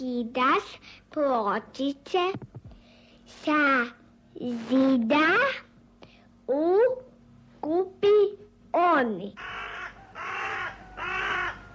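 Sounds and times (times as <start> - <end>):
speech: 0.0 - 2.5, 3.3 - 5.7, 6.5 - 9.6
crow cawing: 9.4 - 11.7.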